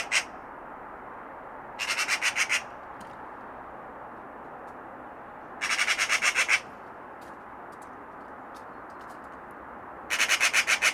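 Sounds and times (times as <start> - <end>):
Eurasian magpie chatter: 0.0 - 0.3, 1.8 - 2.7, 5.6 - 6.7, 10.1 - 10.9.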